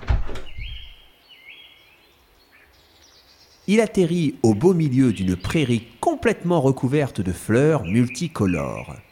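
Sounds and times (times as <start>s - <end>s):
wooden door latch knocks: 0.0s - 0.7s
wooden door hinges creaking: 0.0s - 1.0s
speech: 3.7s - 9.1s.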